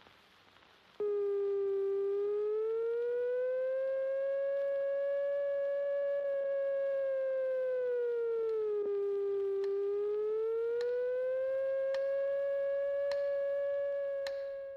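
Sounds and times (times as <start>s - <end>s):
air raid siren wailing: 1.0s - 14.7s
faint clicks: 8.4s - 14.7s.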